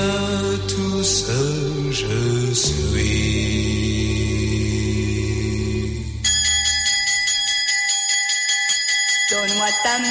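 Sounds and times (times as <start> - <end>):
speech: 0.0 - 4.2, 9.8 - 10.0
low sustained tone: 0.0 - 6.6
bell ringing: 6.2 - 10.0.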